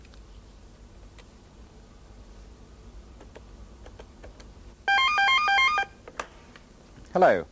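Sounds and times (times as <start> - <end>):
telephone ringing with a bright electronic trilling tone: 4.9 - 6.0
speech: 7.2 - 7.5.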